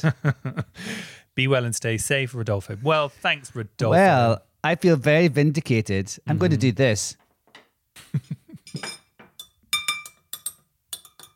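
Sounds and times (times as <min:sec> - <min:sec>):
speech: 0:00.0 - 0:07.2
glass being struck with bright clinks: 0:08.6 - 0:11.3.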